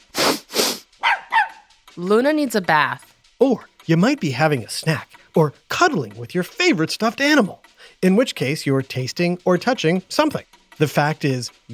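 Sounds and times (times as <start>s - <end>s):
dog barking: 1.0s - 1.7s
speech: 2.0s - 11.7s.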